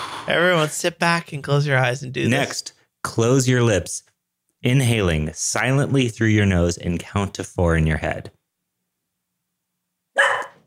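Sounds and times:
speech: 0.2 - 8.4
dog barking: 10.2 - 10.6.

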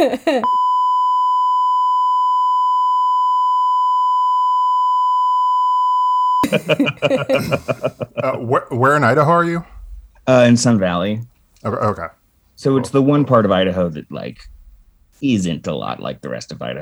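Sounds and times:
laughter: 0.0 - 0.5, 6.4 - 12.1
speech: 0.0 - 0.8, 6.5 - 9.7, 10.3 - 14.5, 15.2 - 16.8
long censor beep tone: 0.5 - 6.4.

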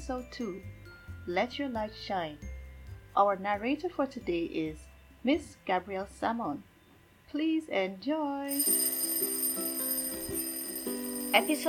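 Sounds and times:
speech: 0.1 - 2.5, 3.2 - 6.7, 7.3 - 9.0, 11.3 - 11.6
electronic school bell chime tones: 8.5 - 11.6.

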